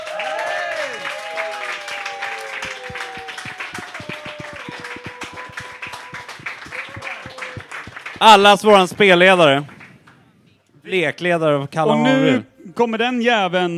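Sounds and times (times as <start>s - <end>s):
audience cheers: 0.0s - 8.6s
large crowd applauding: 0.0s - 10.2s
speech: 8.2s - 9.7s, 10.9s - 13.7s.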